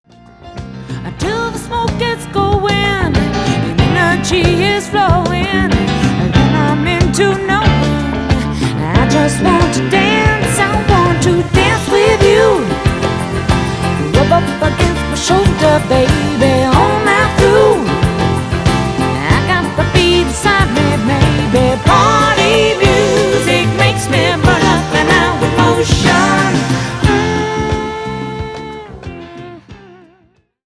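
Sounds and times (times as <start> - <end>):
female idol singing: 0.8 - 29.8.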